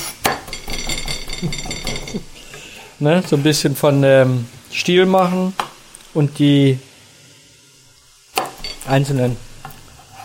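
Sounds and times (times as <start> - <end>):
light clinks of metal: 0.0 - 2.3
speech: 1.4 - 2.4, 3.0 - 6.9, 8.9 - 9.4
knife chopping fresh rosemary on a board: 8.4 - 8.6.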